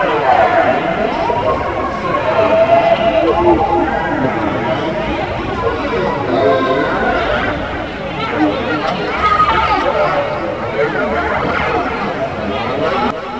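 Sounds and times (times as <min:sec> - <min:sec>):
children ambience: 0:00.0 - 0:13.3.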